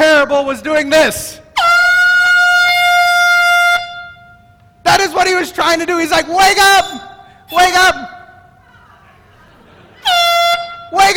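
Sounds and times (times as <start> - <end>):
speech: 0.4 - 1.4, 5.4 - 8.2
handheld air horn blast: 1.5 - 4.6, 10.0 - 11.1
laughter: 8.3 - 10.6.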